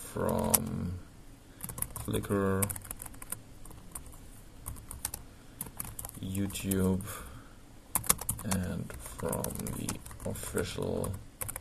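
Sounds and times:
speech: 0.2s - 1.1s, 2.1s - 2.8s, 6.2s - 7.3s, 8.4s - 11.3s
fingers typing on a computer keyboard: 0.3s - 0.7s, 1.6s - 6.7s, 8.0s - 11.5s.

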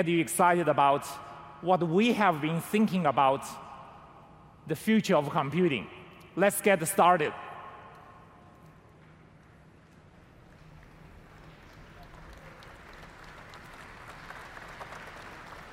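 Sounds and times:
speech: 0.0s - 3.6s, 4.7s - 7.4s
large audience applauding a presenter: 10.5s - 15.7s.

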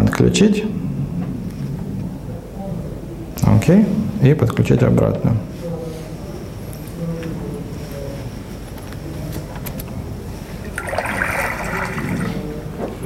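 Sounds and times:
speech: 0.2s - 0.9s, 3.5s - 5.5s
water pouring with a hissing wash: 10.6s - 12.5s.

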